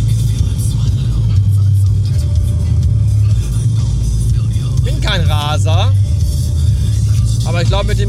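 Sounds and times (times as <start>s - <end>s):
low engine and road rumble in a car cabin driving on a motorway: 0.0s - 8.0s
man speaking: 4.9s - 6.0s.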